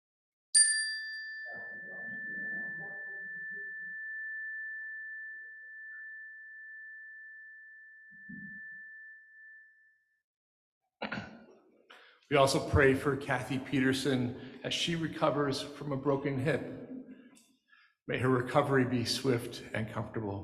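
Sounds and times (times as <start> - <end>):
chime struck during a prayer service in a sanctuary: 0.6 - 10.1
speech: 12.3 - 16.8, 18.1 - 20.4.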